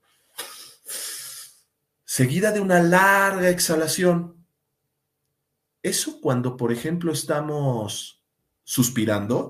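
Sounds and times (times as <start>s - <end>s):
double sniffing inhalation through the nose when smoking: 0.4s - 1.6s
speech: 2.2s - 4.4s, 5.8s - 9.4s.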